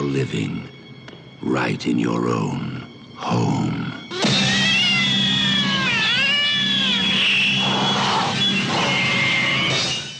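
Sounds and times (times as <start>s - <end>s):
speech: 0.1s - 0.8s, 1.4s - 4.2s
cat yowling and caterwauling: 4.1s - 10.0s.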